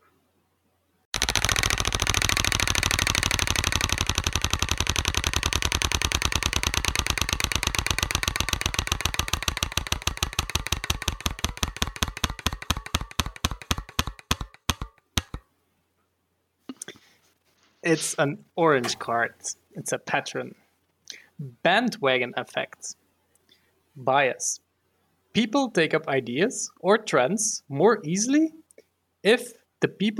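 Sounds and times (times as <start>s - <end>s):
prize wheel pointer ticking during a card game: 1.2s - 15.4s
speech: 17.9s - 20.6s, 21.4s - 23.0s, 24.0s - 24.6s, 25.3s - 28.6s, 29.2s - 30.1s.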